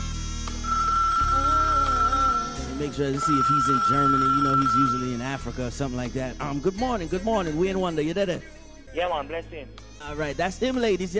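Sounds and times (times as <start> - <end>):
phone ringing tone on an outgoing call: 0.7 - 5.4
speech: 2.8 - 11.1.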